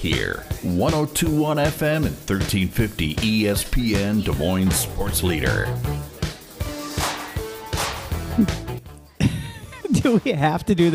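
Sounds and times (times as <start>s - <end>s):
speech: 0.0s - 6.1s, 8.4s - 8.6s, 10.0s - 10.9s
whip crack sound effect played from a phone app: 6.9s - 8.3s.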